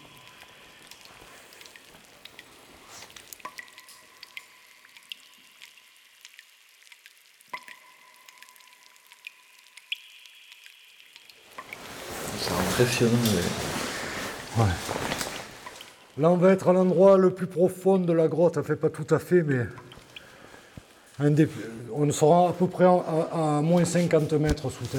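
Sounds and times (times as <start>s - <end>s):
water drops falling from a cave ceiling: 0.0s - 16.2s, 19.5s - 21.2s
low steady hiss and hum: 0.0s - 24.9s
speech: 12.8s - 13.7s, 14.6s - 15.3s, 16.2s - 19.8s, 21.2s - 24.9s.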